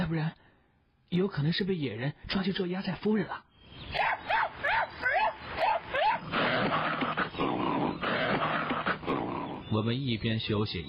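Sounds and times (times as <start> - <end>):
speech: 0.1 - 0.4, 1.1 - 5.1, 9.8 - 10.8
hunting dog barking frantically in a dense forest: 3.9 - 9.6.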